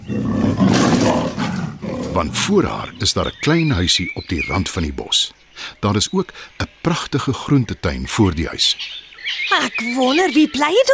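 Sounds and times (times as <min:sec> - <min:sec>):
animal roaring: 0:00.0 - 0:02.6
speech: 0:02.2 - 0:10.9.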